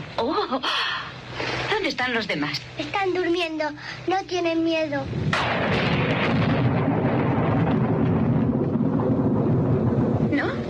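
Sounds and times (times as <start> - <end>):
speech: 0.5 - 0.8, 1.9 - 6.0
heavy thunder rumbling with rolling crackle during a storm: 5.1 - 10.6.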